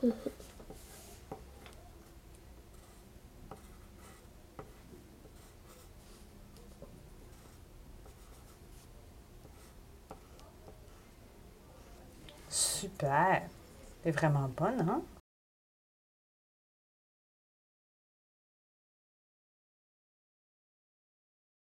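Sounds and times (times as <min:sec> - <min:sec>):
speech: 0:00.0 - 0:00.3, 0:12.8 - 0:15.1
faint hum: 0:00.0 - 0:15.2
pencil scratching on paper while writing a name: 0:02.7 - 0:11.2.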